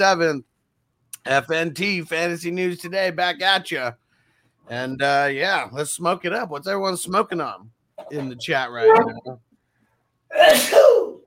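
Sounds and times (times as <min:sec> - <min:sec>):
speech: 0:00.0 - 0:00.5, 0:01.2 - 0:04.0, 0:04.7 - 0:09.5, 0:10.3 - 0:11.0
person sneezing: 0:10.3 - 0:11.2.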